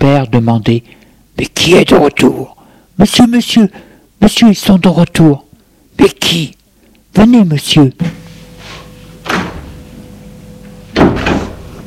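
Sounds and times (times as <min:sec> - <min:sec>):
speech: 0:00.1 - 0:05.4, 0:06.0 - 0:08.2
door slamming shut: 0:09.2 - 0:09.8, 0:10.9 - 0:11.7.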